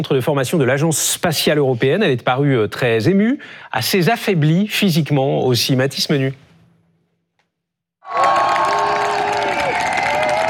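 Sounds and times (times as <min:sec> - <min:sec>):
speech: 0:00.0 - 0:06.5
crowd applauding to welcome an arriving astronaut: 0:08.0 - 0:10.4.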